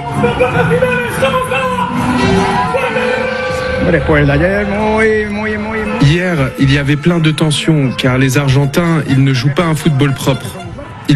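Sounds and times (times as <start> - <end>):
speech: 0.2 - 1.6, 3.8 - 11.1
large crowd of football supporters cheering and chanting outdoors at open-top bus parade: 0.5 - 11.1
football supporters shouting: 1.6 - 8.6, 9.3 - 11.1.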